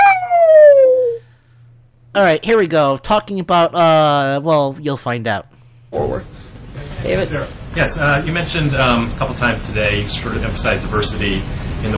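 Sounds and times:
coyote howling: 0.0 - 1.3
speech: 2.2 - 6.4, 7.0 - 11.9.

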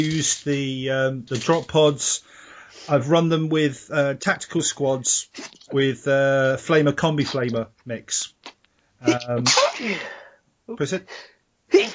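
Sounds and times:
speech: 0.0 - 8.4, 9.0 - 11.9
person sneezing: 5.4 - 5.7, 9.0 - 10.2, 11.7 - 11.9.

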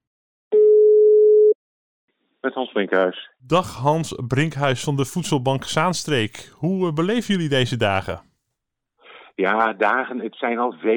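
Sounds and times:
steady telephone tone as a call is placed: 0.5 - 1.6
speech: 2.4 - 8.3, 9.4 - 10.9.

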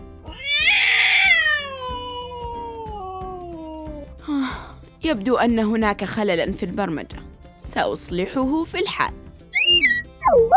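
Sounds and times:
frightened cat meowing: 0.3 - 4.0
speech: 5.0 - 10.5.

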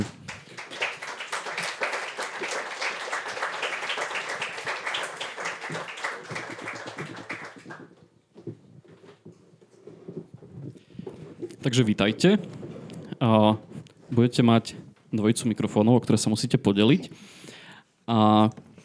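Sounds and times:
crowd applauding: 0.0 - 7.9
speech: 11.6 - 12.6, 13.2 - 17.4, 18.1 - 18.6.

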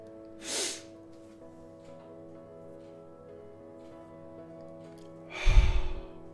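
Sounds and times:
breath drawn in: 0.4 - 0.9, 5.3 - 6.1
soft unforced exhale through an open mouth: 5.3 - 6.1.

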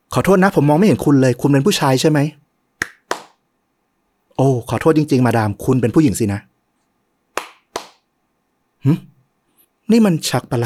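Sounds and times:
speech: 0.2 - 2.4, 4.4 - 6.5, 8.8 - 9.1, 9.9 - 10.6
hand claps: 2.8 - 3.4, 7.3 - 8.1.

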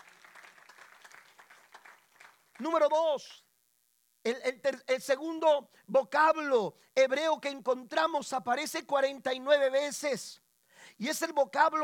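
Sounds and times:
audience applauding: 0.0 - 2.8
speech: 2.6 - 3.4, 4.2 - 11.8.

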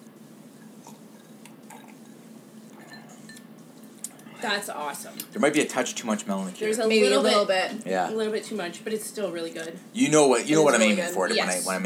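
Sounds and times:
steady low hum: 0.0 - 11.8
drinking glasses clinking in a toast: 2.8 - 3.5
speech: 4.4 - 11.8.

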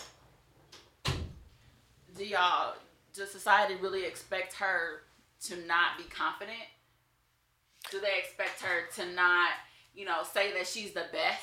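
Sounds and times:
door pushed shut with a solid thud: 1.0 - 1.5
speech: 2.2 - 6.8, 7.8 - 11.4.

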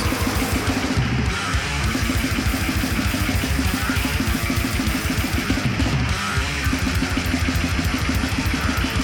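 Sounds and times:
thin bass guitar without low bass frequencies: 0.0 - 3.2
loud dense raw song by a band from Atlanta Georgia: 0.0 - 9.0.

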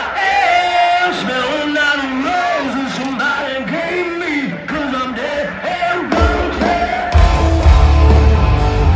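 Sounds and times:
concert crowd noise: 0.0 - 8.9
live rock concert recorded on a phone: 5.7 - 8.9
heavy booming bass: 7.2 - 8.9.

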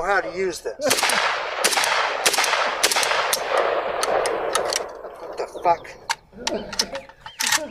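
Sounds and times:
speech: 0.0 - 1.9, 5.6 - 7.0
rifle gunfire in a video game: 0.8 - 5.2.

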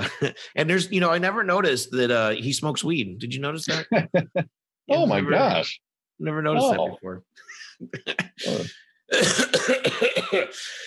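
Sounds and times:
speech: 0.2 - 10.8
loud hacking coughs ending in a raspy throat sound: 8.1 - 10.7.

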